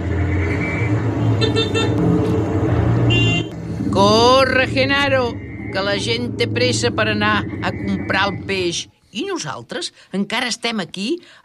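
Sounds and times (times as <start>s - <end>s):
car horns honking from cars behind: 0.0s - 3.6s
steady rumble of traffic and idling engines: 0.0s - 9.7s
speech: 4.0s - 11.4s.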